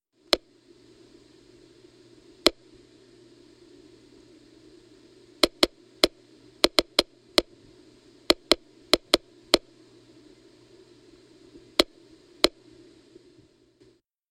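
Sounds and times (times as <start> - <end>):
smart meter: 2.4 - 2.7, 5.4 - 7.5, 8.2 - 9.7, 11.7 - 12.6.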